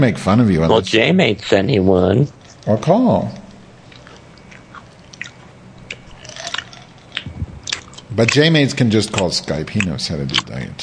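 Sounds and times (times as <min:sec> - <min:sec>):
speech: 0:00.0 - 0:03.4, 0:08.2 - 0:10.8
wet chewing against the microphone: 0:02.2 - 0:10.7
mouth smacks and clicks: 0:03.9 - 0:10.6.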